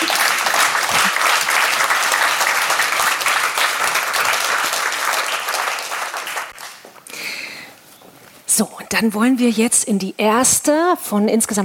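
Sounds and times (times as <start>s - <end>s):
crowd applauding: 0.0s - 6.8s
speech: 8.6s - 11.6s.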